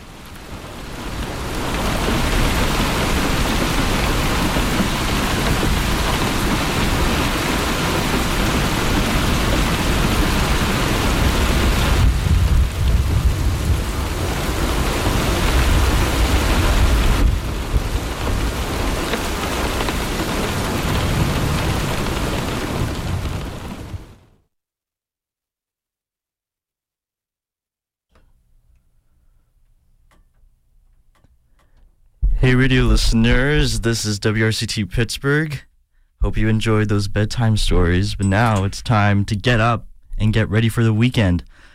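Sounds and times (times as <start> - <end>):
steady dense rainfall: 0.0 - 24.3, 32.4 - 34.4
distant thunder rumbling: 0.4 - 24.2, 32.2 - 34.1
speech: 32.5 - 41.6.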